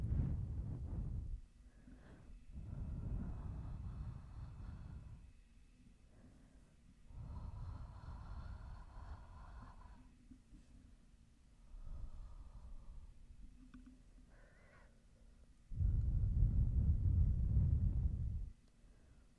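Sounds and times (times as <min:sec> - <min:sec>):
gusts of low rumbling wind: 0:00.0 - 0:01.4, 0:02.5 - 0:05.3, 0:15.7 - 0:18.5
breathing: 0:00.9 - 0:10.9, 0:11.6 - 0:13.2, 0:14.2 - 0:17.3, 0:18.8 - 0:19.3.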